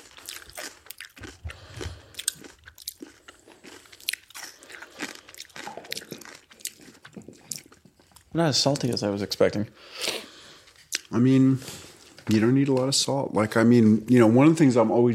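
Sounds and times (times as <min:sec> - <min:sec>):
wet crunching and chewing of crisp fermented radish sauerkraut: 0:00.0 - 0:09.0
speech: 0:08.4 - 0:10.1, 0:11.1 - 0:15.1.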